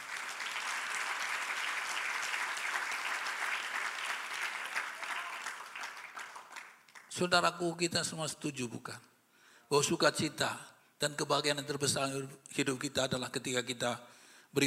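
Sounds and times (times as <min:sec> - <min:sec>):
audience applauding during worship: 0:00.0 - 0:07.1
speech: 0:07.2 - 0:09.1, 0:09.7 - 0:14.6.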